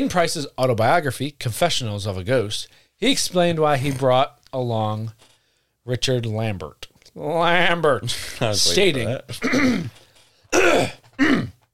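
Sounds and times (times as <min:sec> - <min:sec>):
speech: 0:00.0 - 0:11.5
person clearing their throat: 0:09.3 - 0:11.7.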